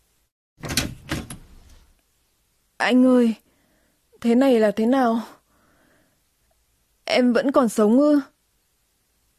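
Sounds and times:
bathroom door swinging open with a scraping creak: 0.6 - 1.9
speech: 2.8 - 3.4, 4.2 - 5.4, 7.1 - 8.3.

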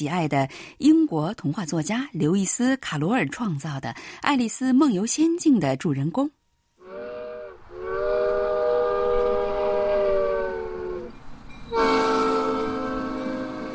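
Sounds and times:
speech: 0.0 - 6.4
small two-carriage train horn blasts at a book café: 6.8 - 13.7
small two-carriage train rumbling on a railway circling a building: 7.5 - 13.7.

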